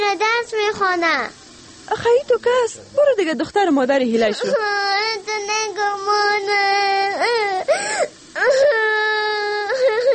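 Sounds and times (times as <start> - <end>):
speech: 0.0 - 8.9
girl crying and sobbing: 4.4 - 5.2, 6.6 - 10.1.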